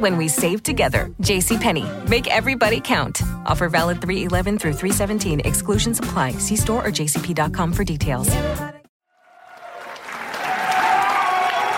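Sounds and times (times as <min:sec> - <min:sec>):
speech: 0:00.0 - 0:08.7
large crowd cheering before a number one contender match: 0:09.1 - 0:11.7.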